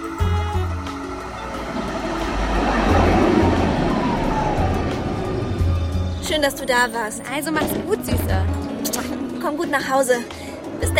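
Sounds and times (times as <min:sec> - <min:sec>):
train arriving at a station: 0:00.0 - 0:08.6
low hum: 0:00.7 - 0:06.9
speech: 0:06.4 - 0:10.9.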